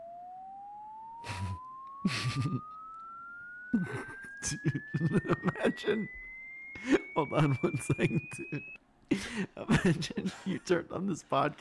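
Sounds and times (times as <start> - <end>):
thin electronic tone from a video sweeping across human hearing range: 0.0 - 8.8
voices or laughter: 1.2 - 2.6, 3.7 - 6.2, 6.8 - 10.8
speech: 2.0 - 2.8, 3.7 - 6.2, 6.8 - 11.5.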